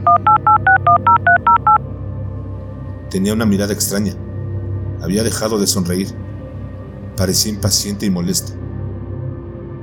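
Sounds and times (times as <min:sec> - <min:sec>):
telephone keypad tones beeping during dialing: 0:00.0 - 0:01.8
speech: 0:00.1 - 0:00.6, 0:03.1 - 0:04.2, 0:05.0 - 0:06.2, 0:07.2 - 0:08.7.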